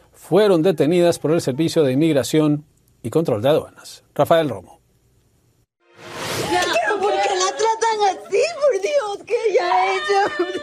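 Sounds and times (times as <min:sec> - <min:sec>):
speech: 0:00.2 - 0:04.8
woman screaming anguished: 0:06.5 - 0:10.6.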